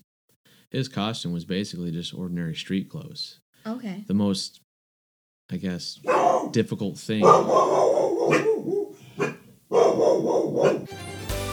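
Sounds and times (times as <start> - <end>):
speech: 0.7 - 4.6, 5.5 - 8.8
dogs barking: 6.0 - 11.0.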